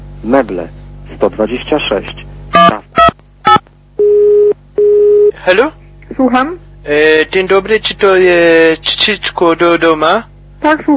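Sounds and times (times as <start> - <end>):
speech: 0.2 - 2.3, 5.5 - 10.9
longer steady telephone tone: 4.0 - 5.4.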